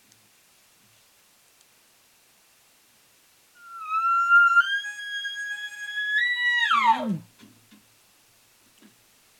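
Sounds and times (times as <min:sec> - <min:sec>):
elk location bugle imitated with a call: 0:03.6 - 0:07.2.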